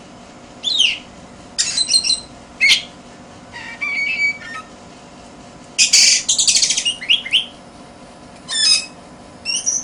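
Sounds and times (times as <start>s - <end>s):
Oriental magpie-robin singing scratchy bursts and clear whistles: 0.6s - 2.9s, 3.5s - 4.7s, 5.8s - 7.6s, 8.5s - 9.8s.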